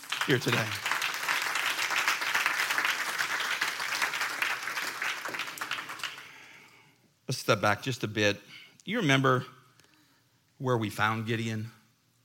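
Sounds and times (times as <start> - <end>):
crowd applauding: 0.0 - 6.5
speech: 0.2 - 0.9, 7.3 - 9.6, 10.6 - 11.8.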